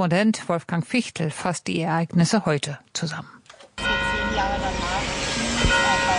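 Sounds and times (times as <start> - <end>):
speech: 0.0 - 3.9
church bell ringing in an open outdoor space: 3.8 - 6.1.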